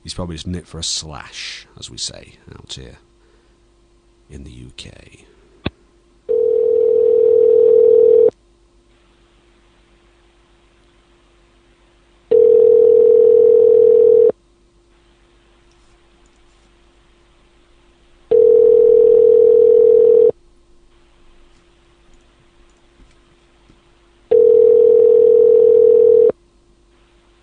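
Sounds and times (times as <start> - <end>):
faint constant hum: 0.0 - 27.4
speech: 0.1 - 3.1, 4.3 - 5.4
ringback tone of an unanswered telephone call in the UK: 6.3 - 8.3, 12.3 - 14.3, 18.3 - 20.4, 24.3 - 26.3.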